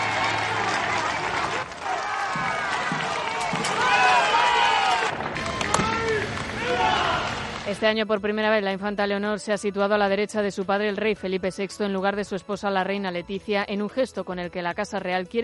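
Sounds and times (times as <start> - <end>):
crowd shouting overlapping shouts: 0.0 - 7.6
large outdoor crowd applauding and cheering at a parade: 0.0 - 7.8
speech: 7.7 - 15.4.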